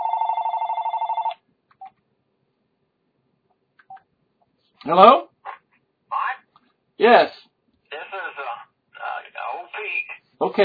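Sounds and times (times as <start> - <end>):
telephone ringing for an incoming caller on a call-in line: 0.0 - 1.4
speech: 4.8 - 5.3, 7.0 - 7.4.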